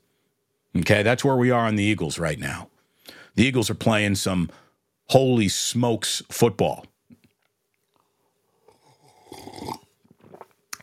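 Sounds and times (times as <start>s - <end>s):
speech: 0.8s - 2.7s, 3.4s - 6.9s
slurp of hot coffee: 8.7s - 10.5s
small wet mouth and swallowing noises: 9.3s - 10.8s.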